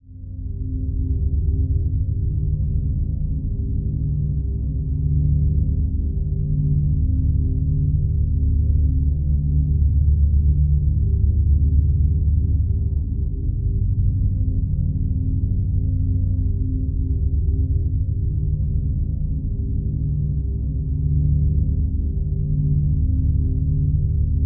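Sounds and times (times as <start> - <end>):
mellow sad somber drone dirge: 0.0 - 24.4.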